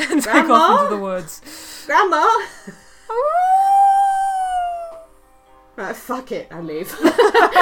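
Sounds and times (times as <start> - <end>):
speech: 0.2 - 3.5, 5.8 - 7.6
person imitating a wolf howl: 3.1 - 5.1.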